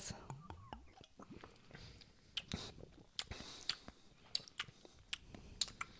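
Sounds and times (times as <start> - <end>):
wet lip smacking while tasting a drink: 0.1 - 5.9.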